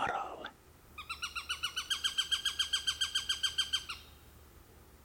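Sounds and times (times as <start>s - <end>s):
Eurasian sparrowhawk harsh down-slurred kek calls: 1.0s - 4.4s.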